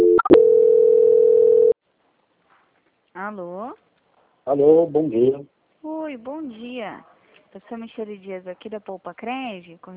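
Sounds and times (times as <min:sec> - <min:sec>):
telephone line blips and clicks during a call transfer: 0:00.0 - 0:01.8
speech: 0:04.5 - 0:05.5, 0:06.1 - 0:09.9.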